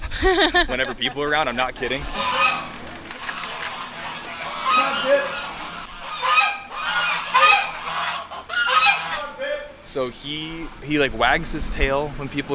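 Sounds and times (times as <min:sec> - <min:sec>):
laughter: 0:00.1 - 0:01.4
speech: 0:00.2 - 0:02.2, 0:05.0 - 0:05.4, 0:09.9 - 0:12.5
duck honking excitedly at a farm animal sanctuary: 0:06.0 - 0:09.3.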